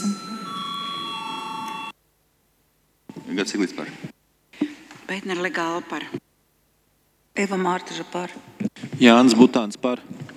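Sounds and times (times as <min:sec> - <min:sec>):
parliament voting bell ringing as a steady electric tone: 0:00.0 - 0:01.9
speech: 0:03.3 - 0:04.1, 0:05.1 - 0:06.2, 0:07.4 - 0:10.2.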